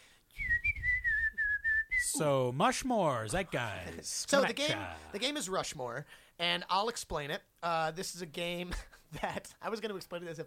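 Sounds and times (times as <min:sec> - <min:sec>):
person whistling a short tune: 0:00.3 - 0:02.2
speech: 0:02.2 - 0:10.4.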